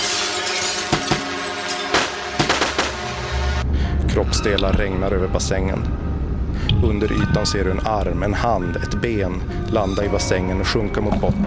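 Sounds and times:
glass smashing as a drone swarm crashes into a public swimming baths: 0:00.0 - 0:03.1
sharp bright cracks and bursts of drone swarm detonating: 0:00.0 - 0:03.4
steady dense roar: 0:01.1 - 0:08.6
speech: 0:04.2 - 0:06.1, 0:06.8 - 0:11.4.

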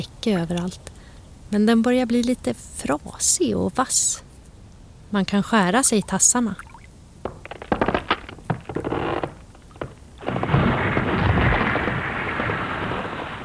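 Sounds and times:
speech: 0:00.0 - 0:04.3, 0:05.1 - 0:06.7
melting lake ice cracking and booming: 0:07.2 - 0:13.4.

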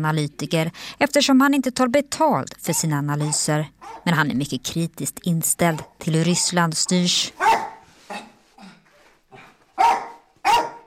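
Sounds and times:
speech: 0:00.0 - 0:08.2
12-year-old dog barking in an apartment building stairwell in southwest Moscow: 0:03.2 - 0:04.1, 0:05.7 - 0:06.4, 0:07.4 - 0:08.4, 0:09.8 - 0:10.8.

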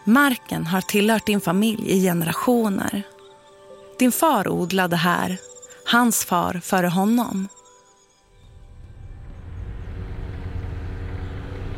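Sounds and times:
speech: 0:00.0 - 0:03.2, 0:04.0 - 0:07.6
motorcycle engine rumbling across rice fields in morning fog: 0:08.6 - 0:11.7.

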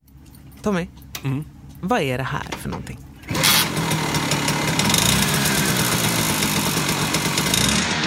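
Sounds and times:
speech: 0:00.6 - 0:03.1
small two-stroke flaka moped engine running: 0:03.2 - 0:08.0.

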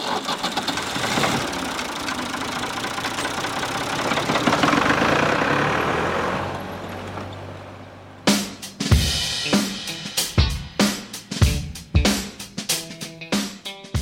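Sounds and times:
tractor engine roaring under heavy strain while pulling a heavy sled: 0:00.0 - 0:08.9
sharp rhythmic thumping beats: 0:08.3 - 0:14.0.

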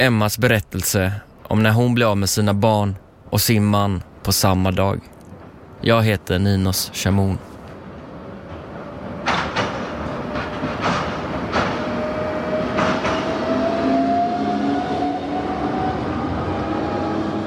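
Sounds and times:
speech: 0:00.0 - 0:05.1, 0:05.8 - 0:07.5
steady tram rumble on tracks at Olskroken in Gothenburg, Sweden: 0:00.0 - 0:17.4
tram wheels clacking over rail joints at Olskroken in Gothenburg, Sweden: 0:07.7 - 0:14.3.

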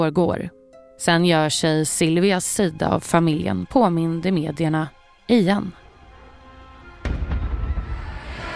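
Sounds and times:
speech: 0:00.0 - 0:05.8
military cannon salute gunfire: 0:07.0 - 0:08.2.

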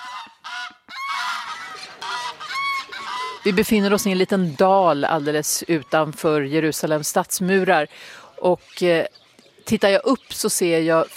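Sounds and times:
geese honking: 0:00.0 - 0:06.6
speech: 0:03.4 - 0:11.1.

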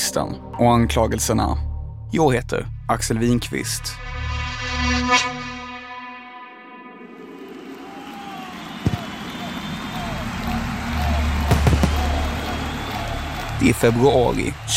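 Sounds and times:
speech: 0:00.1 - 0:04.2, 0:05.1 - 0:05.4, 0:13.6 - 0:14.7
steady rumbling crowd-like roar: 0:07.0 - 0:14.7
fireworks bursting in the air over a giant arena: 0:08.7 - 0:09.8, 0:11.4 - 0:13.6.

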